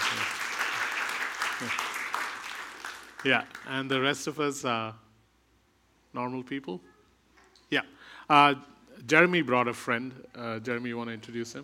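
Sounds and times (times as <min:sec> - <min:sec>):
audience applause: 0:00.0 - 0:03.9
speech: 0:01.6 - 0:01.9, 0:03.2 - 0:05.0, 0:06.1 - 0:06.9, 0:07.7 - 0:11.6.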